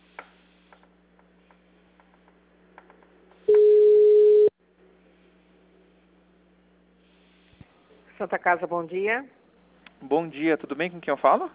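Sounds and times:
telephone call-transfer tone, steady mid-pitched beep: 0:03.5 - 0:04.5
speech: 0:08.2 - 0:09.4, 0:10.0 - 0:11.5.

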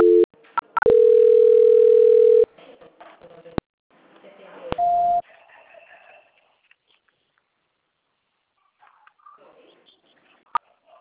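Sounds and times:
sustained steady telephone tone during a call transfer: 0:00.0 - 0:02.5
telephone beeps during a call transfer: 0:00.0 - 0:02.5, 0:04.8 - 0:05.2.

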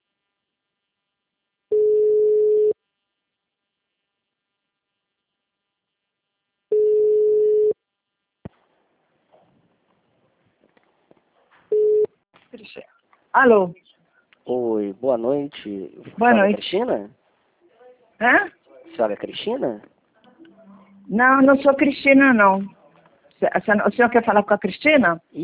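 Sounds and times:
telephone ringing tone as a call connects: 0:01.7 - 0:02.8, 0:06.7 - 0:07.8, 0:11.7 - 0:12.1
speech: 0:13.4 - 0:13.8, 0:14.5 - 0:17.2, 0:18.2 - 0:19.9, 0:21.1 - 0:22.8, 0:23.4 - 0:25.4.

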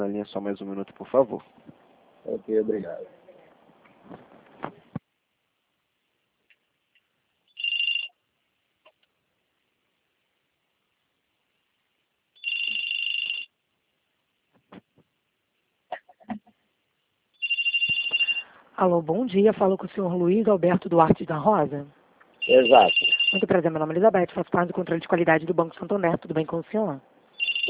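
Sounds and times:
speech: 0:00.0 - 0:03.2, 0:04.1 - 0:04.8, 0:18.8 - 0:27.1
telephone ringback tone while a bank call is transferred: 0:07.6 - 0:08.1, 0:12.4 - 0:13.5, 0:17.4 - 0:18.5, 0:22.4 - 0:23.5, 0:27.4 - 0:27.6.

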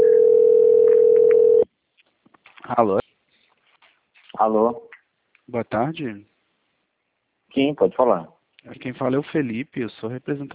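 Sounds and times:
ringing tone of an outgoing phone call: 0:00.0 - 0:01.7
speech: 0:02.7 - 0:03.0, 0:04.4 - 0:04.9, 0:05.5 - 0:06.3, 0:07.5 - 0:10.5.

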